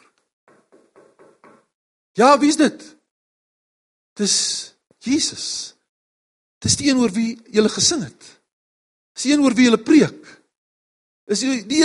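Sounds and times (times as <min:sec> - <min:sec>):
firm knocking on a door: 0:00.5 - 0:01.7
speech: 0:02.2 - 0:03.0, 0:04.2 - 0:05.8, 0:06.6 - 0:08.4, 0:09.2 - 0:10.4, 0:11.3 - 0:11.8.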